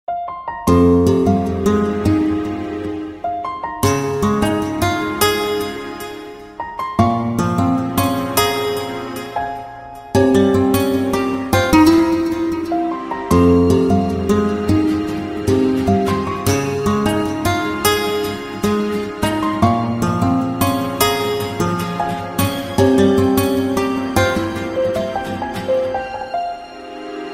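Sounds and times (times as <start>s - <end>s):
Romanian guitar playing: 0.6s - 27.3s.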